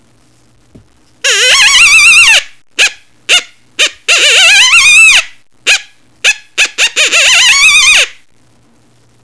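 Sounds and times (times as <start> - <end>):
coyote alarm call: 1.3 - 8.1.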